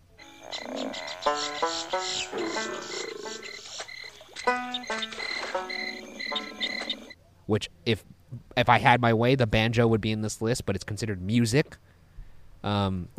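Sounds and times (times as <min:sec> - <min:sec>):
crickets chirping in a bayou: 0:00.0 - 0:07.2
frogs croaking in a bayou: 0:00.0 - 0:07.2
speech: 0:07.5 - 0:11.9, 0:12.6 - 0:13.1.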